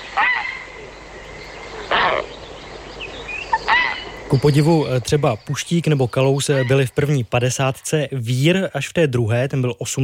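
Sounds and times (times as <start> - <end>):
grey heron calling with harsh raspy croaks: 0.0 - 4.3
speech: 4.3 - 10.0.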